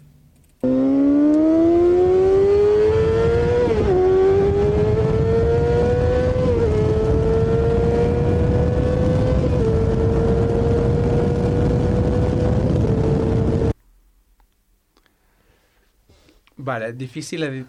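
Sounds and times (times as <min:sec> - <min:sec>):
600 or 1000cc supersport motorcycle engine revving: 0:00.6 - 0:13.8
speech: 0:16.8 - 0:17.6.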